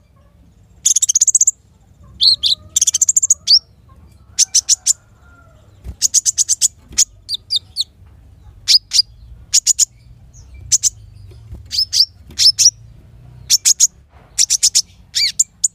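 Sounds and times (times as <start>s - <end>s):
caged Van Hasselt's sunbird ticking notes and whistles: 0.8s - 1.6s, 2.2s - 3.7s, 5.9s - 8.0s, 8.7s - 15.7s.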